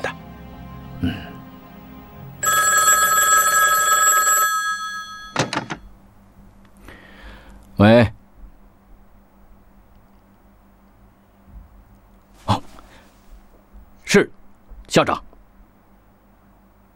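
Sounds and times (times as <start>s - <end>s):
speech: 1.0s - 1.3s, 14.9s - 15.2s
telephone bell ringing: 2.4s - 5.7s
clunks of a telephone handset being picked up: 5.3s - 5.8s.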